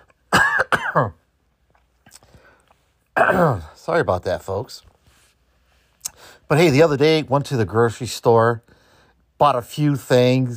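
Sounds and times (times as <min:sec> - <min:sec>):
person coughing: 0:00.3 - 0:01.2, 0:03.2 - 0:03.8
speech: 0:01.0 - 0:01.2, 0:03.3 - 0:04.9, 0:06.2 - 0:08.8, 0:09.4 - 0:10.5.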